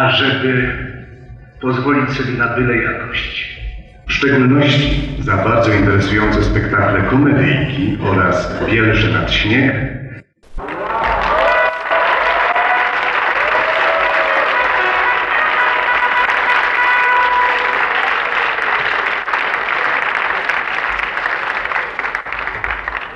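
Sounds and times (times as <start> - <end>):
speech: 0.0 - 10.0
large audience applauding in a theatre at an evening awards ceremony: 10.5 - 23.1
faint cheers or voices: 10.6 - 23.1.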